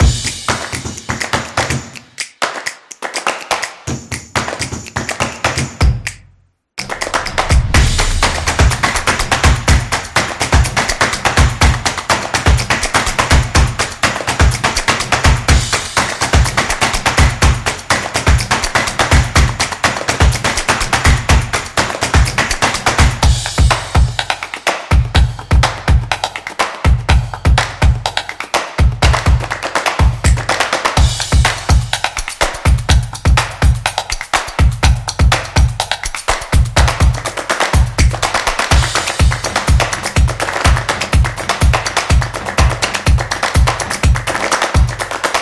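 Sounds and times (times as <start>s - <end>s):
drum music: 0.0s - 6.2s, 6.8s - 45.4s.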